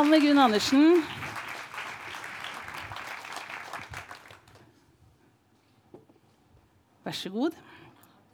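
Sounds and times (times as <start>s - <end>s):
speech: 0.0s - 1.2s, 7.1s - 7.7s
audience applauding for arriving guest: 0.0s - 4.7s.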